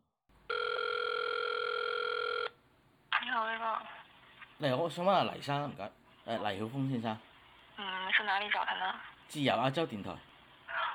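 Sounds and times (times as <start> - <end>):
telephone ringback tone on an outgoing call to Hong Kong: 0.5 - 2.6
speech: 3.4 - 4.0, 4.6 - 10.3.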